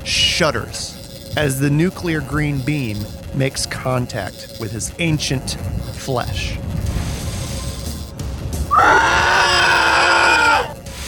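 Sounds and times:
low rumbling background: 0.0 - 9.2
speech: 0.1 - 6.8
horrifying monstrous rasping scream: 8.7 - 10.8.

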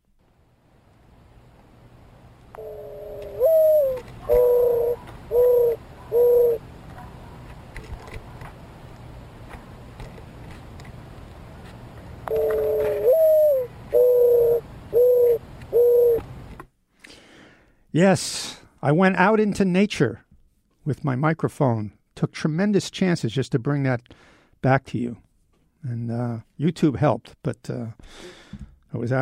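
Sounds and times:
faint hiss: 0.0 - 29.1
mourning dove cooing: 2.6 - 7.3, 12.3 - 16.3
speech: 18.0 - 20.2, 20.8 - 25.2, 25.8 - 29.1.

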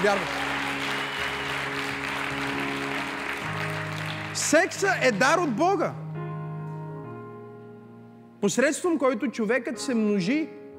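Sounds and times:
speech: 0.0 - 0.4, 4.4 - 6.0, 8.4 - 10.6
audience applauding: 0.0 - 5.9.

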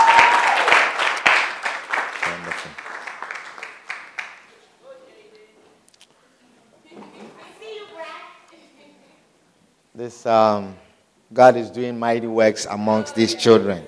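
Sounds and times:
audience applause: 0.0 - 4.5
speech: 10.0 - 13.8.

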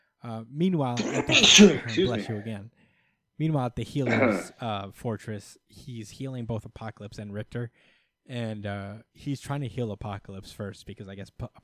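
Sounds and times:
speech: 0.2 - 2.8, 3.4 - 11.6
loud sneeze: 1.0 - 2.4, 4.1 - 4.5.

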